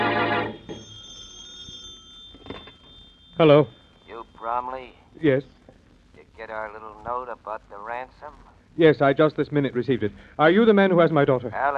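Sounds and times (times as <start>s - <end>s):
telephone bell ringing: 0.0s - 4.8s
speech: 3.4s - 3.8s, 4.4s - 5.6s, 6.4s - 11.7s.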